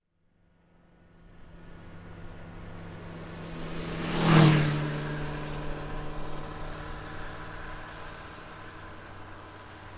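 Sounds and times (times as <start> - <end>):
bike passing by fast and close: 1.8 - 8.8.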